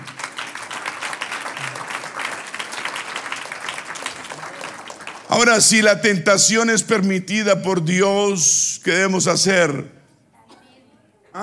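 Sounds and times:
crowd applauding: 0.0s - 6.0s
speech: 5.3s - 10.0s.

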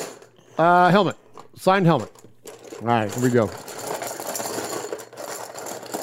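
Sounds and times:
speech: 0.6s - 2.2s, 2.8s - 3.7s
paper entry slips rattling in a metal popcorn tin for a prize drawing: 2.7s - 6.0s.

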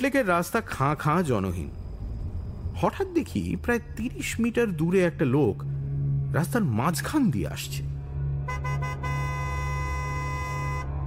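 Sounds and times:
speech: 0.0s - 1.8s, 2.8s - 7.9s, 8.5s - 9.1s
steady low hum: 0.2s - 11.0s
car horn honking on an empty city road: 8.4s - 11.0s.

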